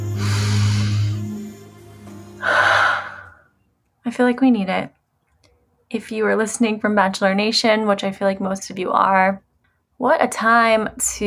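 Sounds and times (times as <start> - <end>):
person breathing deeply: 0.0 - 1.4, 2.4 - 3.5
speech: 4.1 - 5.0, 5.9 - 9.4, 10.0 - 11.2.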